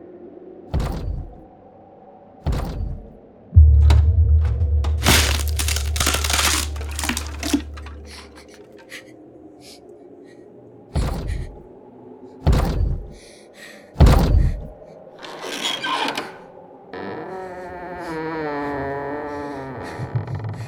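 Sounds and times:
hardwood bedroom door scraping and creaking open: 0:00.7 - 0:01.4, 0:02.5 - 0:09.0, 0:14.0 - 0:20.6
thuds on a hardwood bedroom door: 0:00.7 - 0:01.4, 0:02.5 - 0:05.0, 0:11.0 - 0:11.6, 0:12.4 - 0:13.2, 0:14.0 - 0:14.8.

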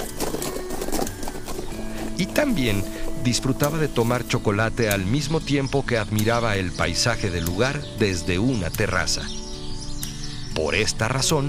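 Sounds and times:
horse hooves clip-clopping at a walking pace: 0:00.0 - 0:05.4
speech: 0:02.2 - 0:09.4, 0:10.6 - 0:11.4.

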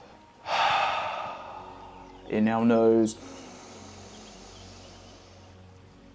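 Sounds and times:
breath exhaled through the mouth: 0:00.4 - 0:02.1, 0:03.2 - 0:05.6
speech: 0:02.3 - 0:03.4.

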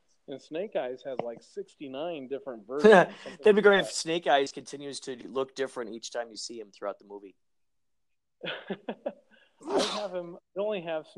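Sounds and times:
speech: 0:00.3 - 0:07.4, 0:08.4 - 0:11.1
person sneezing: 0:09.6 - 0:10.2.

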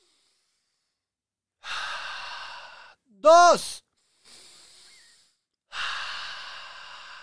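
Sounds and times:
deep breath taken to calm down: 0:00.0 - 0:03.0, 0:03.9 - 0:07.2
speech: 0:03.2 - 0:03.8.

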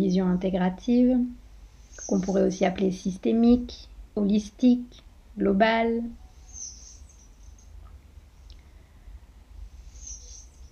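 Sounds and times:
speech: 0:00.0 - 0:01.4, 0:02.0 - 0:06.2
steady low rumble of noise: 0:00.0 - 0:10.6
birds chirping: 0:01.8 - 0:02.7, 0:06.4 - 0:07.9, 0:09.9 - 0:10.6.

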